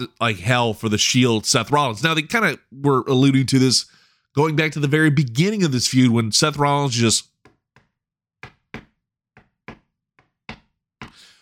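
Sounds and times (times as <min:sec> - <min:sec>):
speech: 0:00.0 - 0:07.3
rhythmic knocking on a door: 0:07.4 - 0:11.2.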